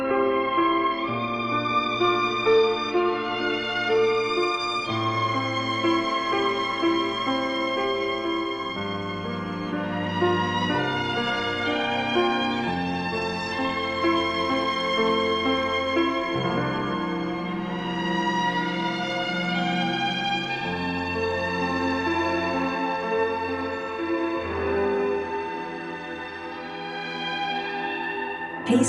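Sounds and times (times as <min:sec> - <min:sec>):
hazy dreamy melody drenched in heavy reverb: 0:00.0 - 0:28.8.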